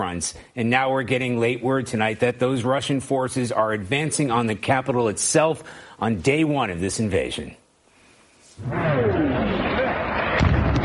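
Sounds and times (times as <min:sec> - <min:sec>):
speech: 0:00.0 - 0:07.6, 0:08.6 - 0:09.2
faint falling whine: 0:08.6 - 0:10.8
loud explosion with sustained roaring rumble: 0:08.6 - 0:10.8
crackling debris from an explosion: 0:09.3 - 0:10.8.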